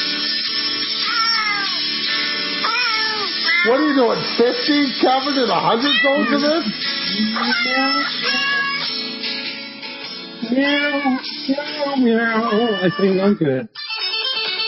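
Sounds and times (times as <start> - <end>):
steady musical backing: 0.0 - 14.6
pitched cat meows arranged as a bouncy Christmas melody: 1.0 - 1.8, 2.6 - 4.2, 5.7 - 6.6, 7.3 - 9.0, 10.6 - 11.4, 12.2 - 14.6
speech: 3.6 - 8.2, 10.5 - 13.8.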